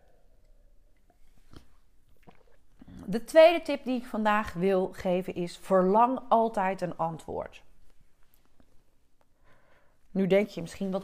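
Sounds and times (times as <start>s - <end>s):
person sipping tea: 0.4s - 3.1s
person swallowing tea: 0.4s - 3.1s
speech: 3.1s - 7.7s, 10.1s - 11.0s.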